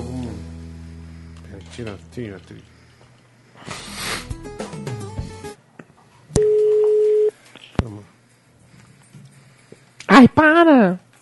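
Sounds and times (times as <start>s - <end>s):
speech: 1.6s - 2.8s, 10.3s - 11.0s
telephone ringback tone on an outgoing call: 6.4s - 7.3s.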